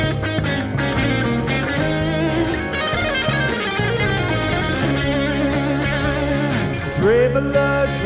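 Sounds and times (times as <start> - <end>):
distorted electric guitar playing fast riffs: 0.0 - 8.0
steady drums: 0.0 - 8.0.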